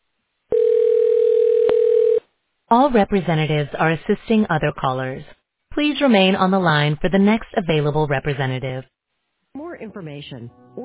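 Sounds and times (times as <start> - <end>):
telephone tone during call transfer through a hospital phone menu: 0.5 - 2.3
speech: 2.7 - 8.9, 9.8 - 10.8.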